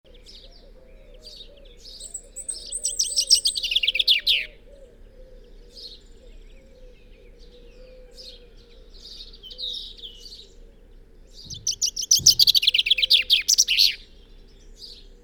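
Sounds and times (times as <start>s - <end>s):
low steady hum: 0.1s - 15.2s
Common chaffinch Fringilla coelebs song: 1.8s - 4.6s, 9.1s - 15.2s.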